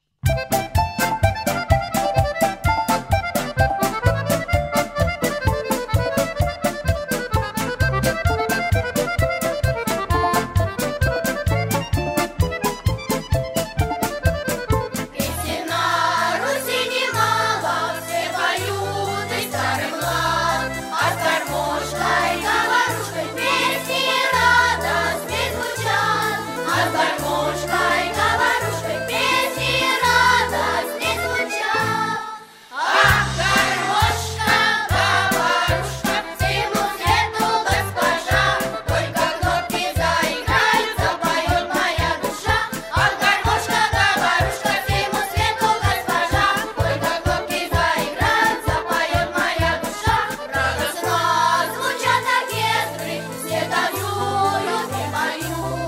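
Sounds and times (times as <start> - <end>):
garmoshka accordion: 0.2 - 55.8
vocal group singing: 15.2 - 55.8.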